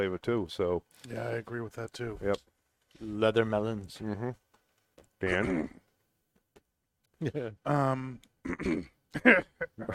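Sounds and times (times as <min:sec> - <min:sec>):
speech: 0:00.0 - 0:04.4, 0:05.2 - 0:05.8, 0:07.2 - 0:09.9
person coughing during a tobacco tasting: 0:05.2 - 0:05.8, 0:08.4 - 0:09.9.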